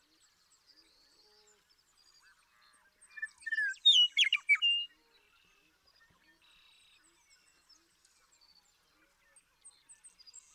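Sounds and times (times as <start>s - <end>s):
Western meadowlark singing: 3.0s - 4.9s.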